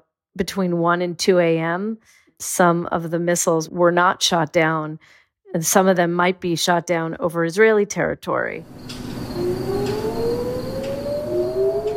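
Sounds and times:
speech: 0:00.4 - 0:09.0
air raid warning sirens in Israel wailing: 0:08.6 - 0:11.9
steady hum: 0:08.6 - 0:11.9.

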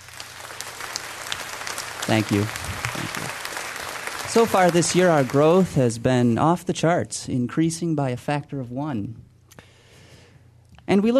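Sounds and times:
faint applause at a product presentation: 0:00.0 - 0:05.9
speech: 0:02.1 - 0:03.4, 0:04.3 - 0:09.2, 0:10.9 - 0:11.1.

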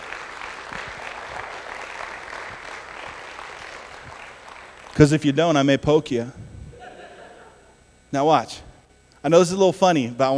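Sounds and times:
room full of people applauding: 0:00.0 - 0:05.4
speech: 0:05.0 - 0:06.4, 0:08.1 - 0:10.3
laughter: 0:06.7 - 0:07.8.

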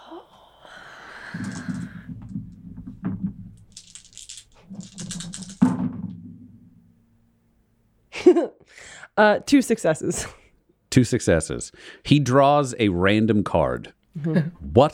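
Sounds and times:
dice clattering during a tabletop role-playing game: 0:01.4 - 0:01.9, 0:03.6 - 0:05.9
speech: 0:09.2 - 0:14.9.

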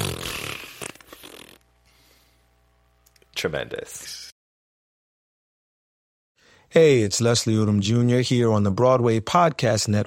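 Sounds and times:
balloon deflating with a sputtering fart-like buzz: 0:00.0 - 0:01.6
speech: 0:03.4 - 0:04.3, 0:06.7 - 0:10.0.

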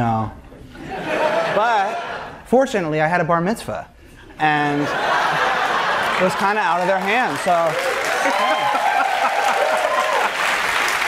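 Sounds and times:
laughter: 0:00.8 - 0:02.4, 0:04.6 - 0:10.6
speech: 0:02.5 - 0:05.2, 0:06.2 - 0:08.8
large audience applauding: 0:05.4 - 0:11.0.

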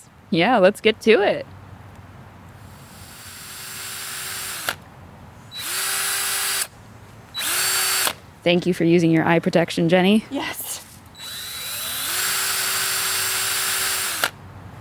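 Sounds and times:
speech: 0:00.3 - 0:01.6, 0:08.4 - 0:10.6
power drill boring holes into a hard red oak log: 0:02.7 - 0:04.8, 0:05.5 - 0:06.7, 0:07.4 - 0:08.2, 0:11.2 - 0:14.4.

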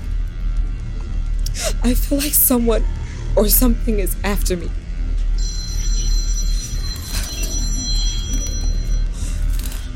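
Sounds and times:
low hum: 0:00.0 - 0:09.9
speech: 0:01.6 - 0:04.8
telephone ringing with a high electronic ring: 0:05.4 - 0:09.8.

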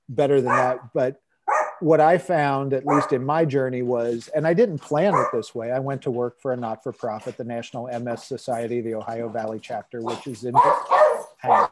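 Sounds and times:
speech: 0:00.1 - 0:11.7
dogs barking and yipping: 0:00.4 - 0:00.9, 0:01.5 - 0:01.9, 0:02.8 - 0:03.3, 0:05.0 - 0:05.5, 0:10.1 - 0:11.7.

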